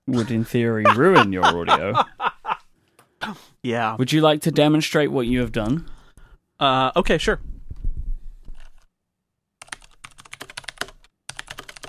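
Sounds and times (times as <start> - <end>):
speech: 0.1 - 2.2, 3.3 - 6.0, 6.6 - 7.5
laughter: 0.1 - 2.6
low rumbling thump: 7.4 - 8.6
clicky mechanical keyboard typing: 9.6 - 11.8.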